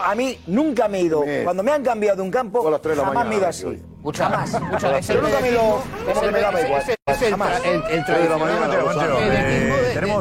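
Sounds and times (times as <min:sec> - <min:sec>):
speech: 0:00.0 - 0:10.1
siren sound effect wailing with rising and falling tone: 0:04.6 - 0:10.1.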